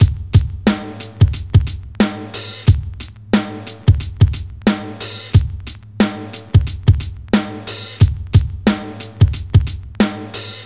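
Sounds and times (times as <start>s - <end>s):
rock drum loop reference beat: 0.0s - 10.6s.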